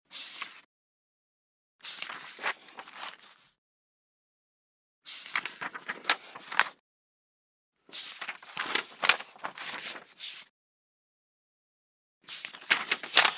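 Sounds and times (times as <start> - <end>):
book pages turning: 1.8 - 3.5, 5.1 - 6.8, 7.9 - 10.4, 12.3 - 13.3.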